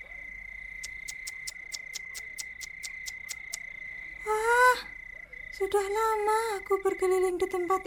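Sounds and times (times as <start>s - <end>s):
gecko chirping call: 0.8s - 3.9s
speech: 5.6s - 7.8s.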